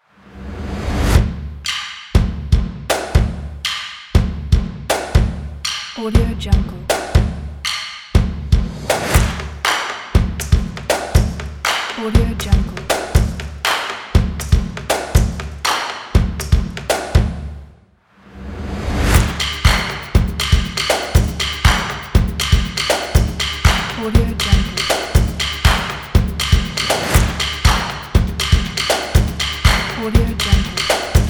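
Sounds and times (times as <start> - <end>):
energetic percussion drums: 1.0 - 11.6, 12.2 - 17.5, 18.8 - 31.2
energetic percussion claps: 2.9 - 3.9, 4.9 - 5.2, 8.9 - 12.1, 12.8 - 17.2, 19.2 - 31.2.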